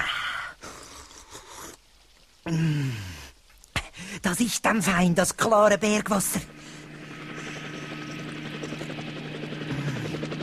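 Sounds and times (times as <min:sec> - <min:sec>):
speech: 0:02.5 - 0:03.0, 0:04.3 - 0:06.6
helicopter low engine drone: 0:06.0 - 0:10.4
helicopter rotor thumping: 0:06.2 - 0:10.4.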